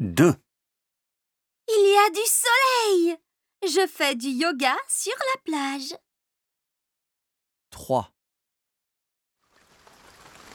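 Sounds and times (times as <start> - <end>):
speech: 0.2 - 0.4, 1.7 - 6.0, 7.7 - 8.1
rain falling: 9.4 - 10.5.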